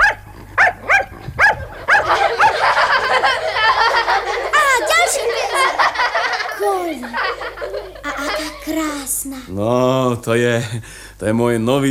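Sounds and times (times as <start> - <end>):
trained dog barking while performing circus tricks: 0.0 - 2.8
excited voices and laughter: 1.8 - 9.5
speech: 8.8 - 11.8.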